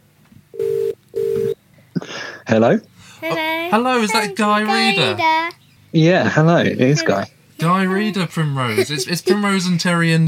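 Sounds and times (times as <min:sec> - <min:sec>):
phone line ringback tone: 0:00.6 - 0:01.6
speech: 0:02.5 - 0:10.2
laughter: 0:06.2 - 0:10.2.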